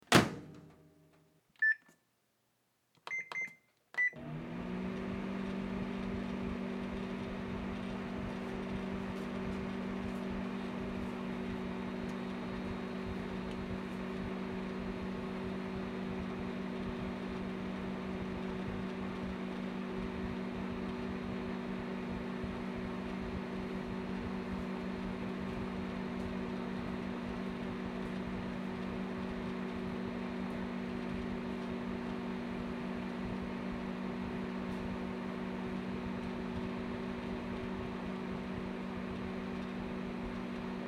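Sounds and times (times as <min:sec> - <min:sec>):
microwave: 0:00.0 - 0:01.9, 0:03.0 - 0:40.8.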